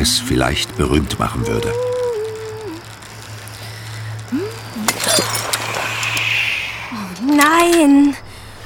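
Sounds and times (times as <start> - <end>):
speech: 0.0 - 1.9, 7.3 - 8.2
glass shards crunching under a rolling wheel: 4.8 - 6.4.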